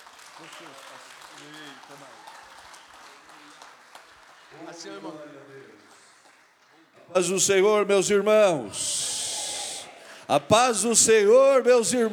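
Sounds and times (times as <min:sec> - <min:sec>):
audience clapping steadily: 0:00.0 - 0:06.9
speech: 0:00.4 - 0:02.4, 0:04.5 - 0:06.0, 0:07.0 - 0:09.2, 0:10.3 - 0:12.1
voices speaking and calling out: 0:07.0 - 0:12.1.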